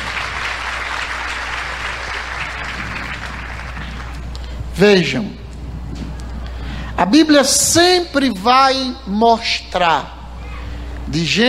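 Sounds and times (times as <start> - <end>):
audience applauding: 0.0 - 4.2
speech: 4.8 - 5.4, 7.0 - 10.2, 11.1 - 11.4.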